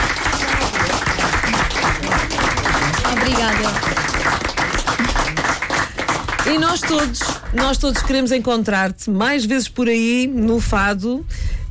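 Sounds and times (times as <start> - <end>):
audience applause in a fado house: 0.0 - 8.2
speech: 6.5 - 11.4.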